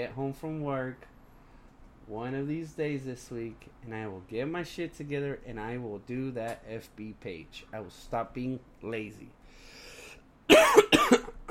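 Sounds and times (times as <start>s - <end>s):
speech: 0.0s - 1.2s, 2.1s - 9.7s
harsh raspy coughs from a person who is a little sick: 10.5s - 11.4s.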